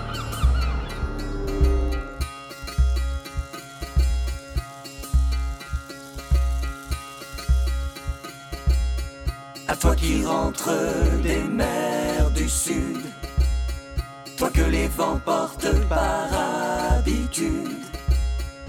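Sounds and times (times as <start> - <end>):
seagulls in Morbihan squawking: 0.0 - 2.2
music with a steady thumping bass beat: 0.0 - 18.6
speech: 9.9 - 13.2, 14.4 - 18.0.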